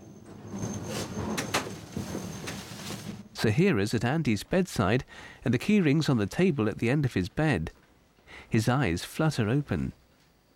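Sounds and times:
lift doors sliding shut with a low rumbling glide: 0:00.0 - 0:03.1
speech: 0:03.4 - 0:10.0.

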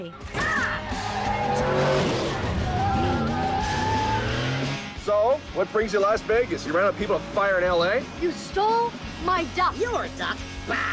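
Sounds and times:
speech: 0:00.0 - 0:01.0, 0:05.6 - 0:10.9
tires squealing: 0:00.4 - 0:10.9
car skidding: 0:00.5 - 0:08.2
cartoon car engine roaring in a chase: 0:00.6 - 0:10.9.

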